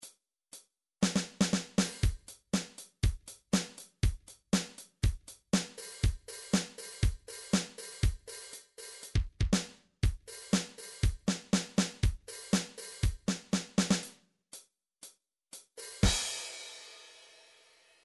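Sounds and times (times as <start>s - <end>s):
MIDI disco drum beat: 1.0s - 14.2s, 15.6s - 17.1s.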